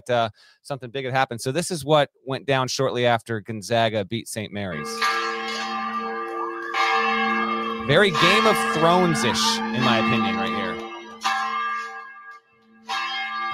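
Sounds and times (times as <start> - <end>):
speech: 0.0 - 5.8, 7.9 - 10.7
large chapel bell ringing: 4.7 - 13.5.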